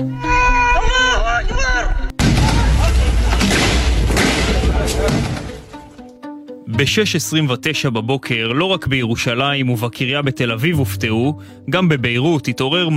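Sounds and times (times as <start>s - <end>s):
people shouting with tonal calls: 0.1s - 3.8s
loud explosive blast: 2.2s - 5.7s
speech: 6.8s - 12.9s.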